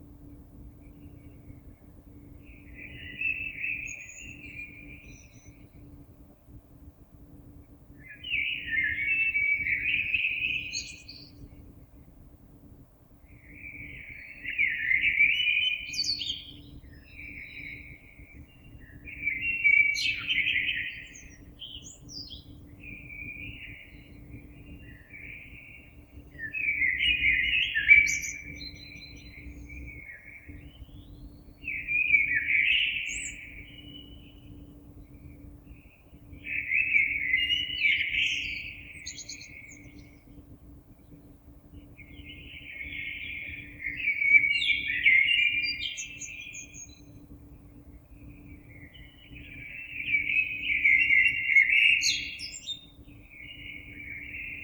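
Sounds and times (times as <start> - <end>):
blackbird: 2.4 - 5.9, 8.0 - 11.6, 13.4 - 40.4, 41.0 - 54.6.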